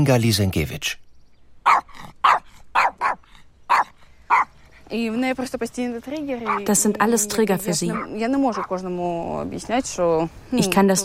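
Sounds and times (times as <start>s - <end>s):
speech: 0.0s - 1.0s, 4.9s - 11.0s
dog barking: 1.6s - 4.6s, 6.5s - 6.7s, 7.9s - 8.8s.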